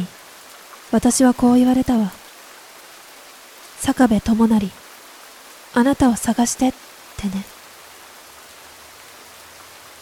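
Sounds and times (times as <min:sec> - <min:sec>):
steady quiet rainfall: 0:00.0 - 0:10.0
speech: 0:00.9 - 0:02.2, 0:03.8 - 0:04.8, 0:05.7 - 0:07.5.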